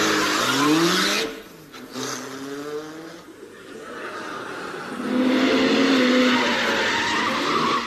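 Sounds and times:
car engine revving: 0.0 - 7.8
tyre squeal: 5.7 - 7.8.

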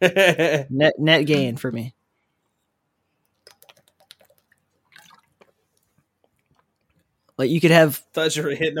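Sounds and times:
speech: 0.0 - 2.0, 7.4 - 8.7
person sipping water: 3.2 - 7.3.

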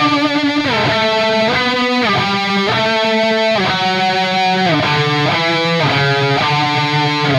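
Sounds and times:
electric guitar chords in drop D tuning through distortion and chorus effects: 0.0 - 7.3.

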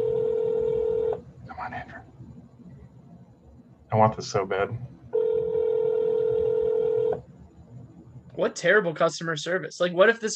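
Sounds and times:
telephone dialing tone: 0.0 - 1.2, 5.1 - 7.2
speech: 3.9 - 4.9, 8.4 - 10.3.

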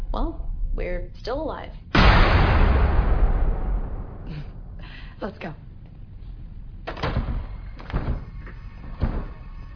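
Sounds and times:
speech: 0.1 - 2.9, 5.2 - 5.7
door rattling and creaking as it is forced open: 6.8 - 9.7.

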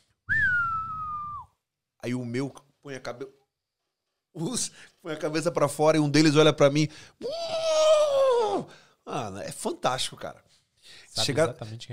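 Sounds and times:
human whistle calling horses: 0.3 - 1.6
speech: 2.0 - 3.4, 4.4 - 7.8, 8.5 - 11.9.

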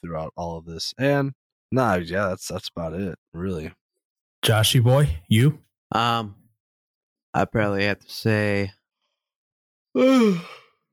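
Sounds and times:
speech: 0.0 - 3.8, 4.4 - 6.4, 7.4 - 8.8, 10.0 - 10.6
person yawning: 10.0 - 10.7.

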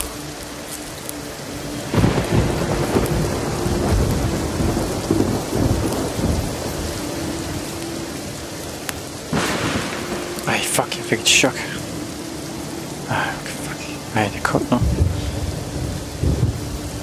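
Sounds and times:
heavy rain in a cold thunderstorm: 0.0 - 17.0
low rumbling thunder: 1.7 - 17.0
thunderclap: 1.8 - 8.0, 9.3 - 12.0, 14.7 - 17.0
speech: 11.1 - 11.8, 14.2 - 15.0.

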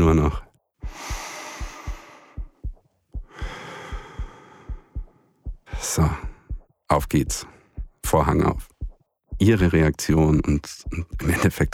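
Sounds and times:
speech: 0.1 - 0.5, 6.0 - 6.3, 6.9 - 8.7, 9.4 - 11.7
long rushing breaths: 0.8 - 6.7
loud pounding heartbeat: 0.8 - 11.7.

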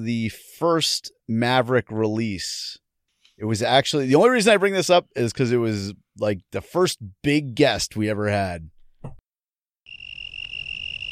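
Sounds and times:
speech: 0.0 - 2.8, 3.4 - 9.2
shrill chorus of crickets chirping: 9.9 - 11.0.

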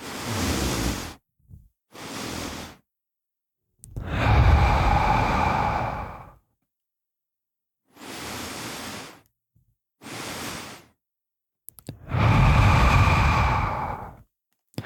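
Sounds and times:
person doing a breathing exercise aloud: 0.0 - 1.2, 1.9 - 2.8, 3.9 - 6.4, 7.9 - 9.2, 10.0 - 11.0, 11.9 - 14.2.

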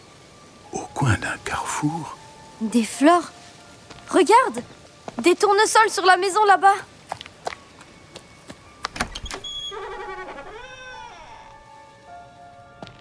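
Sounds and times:
speech: 1.0 - 3.4, 4.1 - 6.9
house door hinge creaking as pushed open: 8.9 - 11.6.

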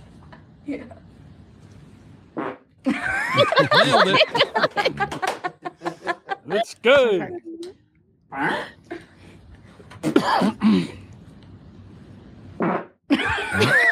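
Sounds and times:
speech: 0.7 - 1.1, 3.4 - 5.3, 6.5 - 7.5, 8.4 - 8.8, 10.2 - 11.0
fart noises: 2.3 - 2.8, 12.6 - 13.0
laughter: 2.9 - 6.6, 13.1 - 13.8.

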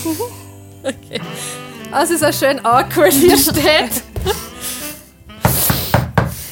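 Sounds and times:
speech: 0.0 - 4.5
laughter: 0.8 - 1.6, 2.9 - 4.6
hard knocking on a door: 5.4 - 6.4.

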